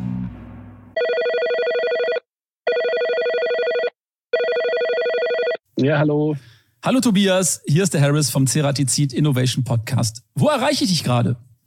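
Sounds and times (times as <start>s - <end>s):
telephone ringing on an outgoing call: 1.0s - 5.6s
speech: 5.8s - 11.5s.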